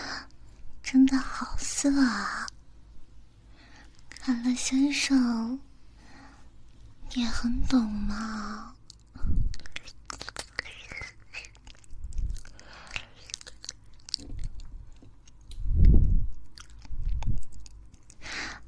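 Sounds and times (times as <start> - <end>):
speech: 1.0 - 2.4, 4.2 - 5.7, 7.1 - 10.0
wet mouth sounds of fingers moving in a mouth: 8.8 - 18.6.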